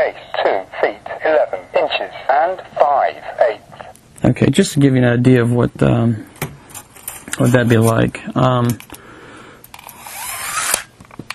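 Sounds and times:
speech: 0.0 - 3.6, 4.2 - 6.3, 7.4 - 8.9
steel tape measure blade retracting into its case: 9.7 - 10.9.

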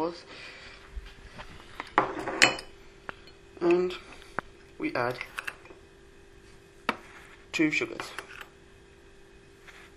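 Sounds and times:
speech: 0.0 - 0.6, 4.8 - 5.3, 7.6 - 8.2
spoon clinking against dishes while making a hot drink: 1.8 - 3.9.

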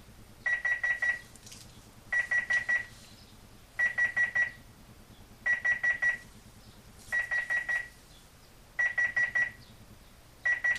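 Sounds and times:
electronic computer timer alarm beeping: 0.4 - 1.2, 2.1 - 2.9, 3.8 - 4.6, 5.4 - 6.2, 7.1 - 8.0, 8.8 - 9.6, 10.4 - 10.7.

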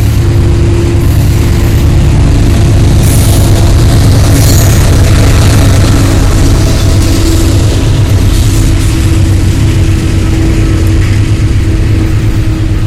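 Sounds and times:
diesel train engine laboring hard as it gets started on a single track: 0.0 - 12.8.

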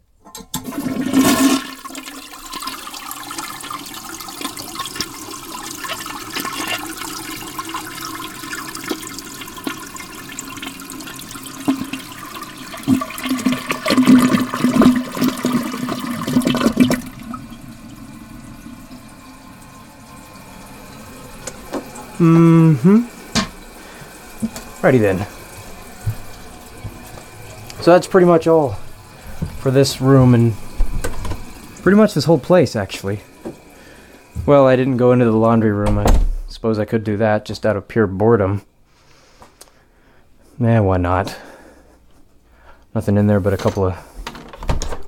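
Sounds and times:
toilet flushing: 0.4 - 35.7
toilet cistern refilling trickle: 0.6 - 35.3
speech: 24.8 - 25.4, 27.8 - 28.8, 29.6 - 30.6, 31.8 - 33.3, 34.4 - 38.7, 40.6 - 41.4, 43.0 - 44.1.

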